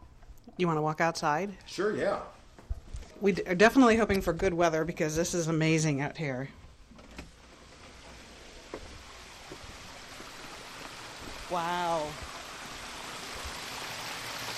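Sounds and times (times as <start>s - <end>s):
speech: 0.6s - 2.4s, 3.2s - 6.6s, 11.5s - 12.3s
broadband rushing water outdoors: 8.1s - 14.5s
person exclaiming: 11.5s - 12.2s.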